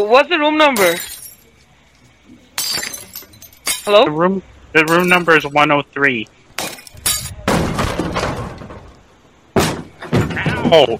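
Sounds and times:
speech: 0.0 - 1.1, 3.9 - 6.4, 10.7 - 10.9
glass shattering: 0.7 - 1.6, 2.5 - 4.1, 4.8 - 5.6, 6.6 - 8.8
glass fragments tinkling: 0.7 - 4.1, 4.8 - 5.6, 6.6 - 7.4.

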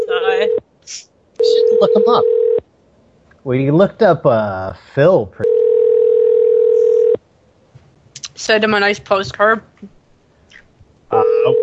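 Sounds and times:
phone ringing: 0.0 - 0.6, 1.4 - 2.6, 5.4 - 7.2, 11.2 - 11.6
speech: 0.9 - 1.1, 1.8 - 2.4, 3.4 - 5.6, 8.4 - 10.0.

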